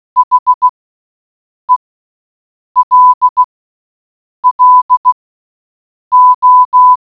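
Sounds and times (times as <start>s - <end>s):
Morse code beeps: 0.2s - 0.7s, 2.8s - 3.4s, 4.4s - 5.2s, 6.1s - 7.0s.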